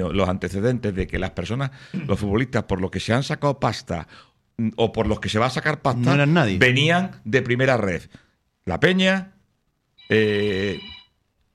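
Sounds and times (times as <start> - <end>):
speech: 0.0 - 9.4, 10.1 - 11.0
mobile phone ringtone: 10.0 - 11.2.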